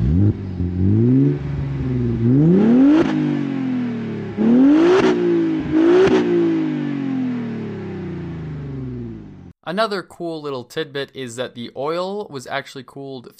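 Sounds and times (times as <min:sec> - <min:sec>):
powerful high-performance car engine revving: 0:00.0 - 0:09.5
speech: 0:09.7 - 0:13.3.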